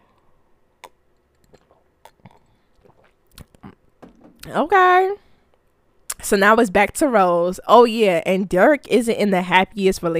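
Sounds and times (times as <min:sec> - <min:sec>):
person sipping a drink: 0:00.8 - 0:03.8
soft wet mouth clicks: 0:00.8 - 0:03.8
swallowing: 0:00.8 - 0:03.8
speech: 0:04.5 - 0:05.2, 0:06.3 - 0:10.1.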